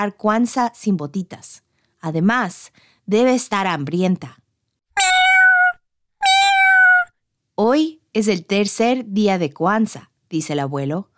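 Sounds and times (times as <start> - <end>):
speech: 0.0 - 4.4, 7.6 - 11.1
cat meowing: 5.0 - 7.1.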